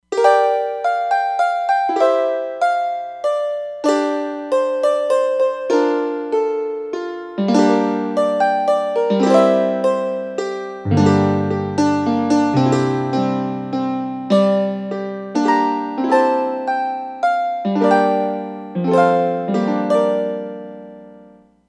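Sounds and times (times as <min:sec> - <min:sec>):
synthesized Irish harp from a sound module factory patch: 0:00.0 - 0:21.4.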